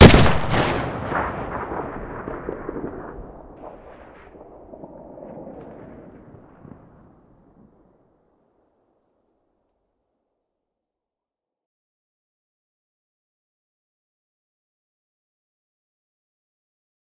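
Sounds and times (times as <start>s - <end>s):
sniper rifle muzzle gunshot: 0.0s - 3.8s.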